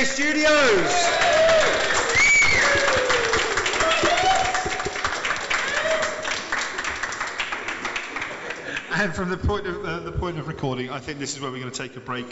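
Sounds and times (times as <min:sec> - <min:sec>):
speech: 0:00.1 - 0:01.3, 0:09.0 - 0:12.2
audience applauding: 0:00.6 - 0:08.9
people whooping and cheering: 0:00.7 - 0:06.6.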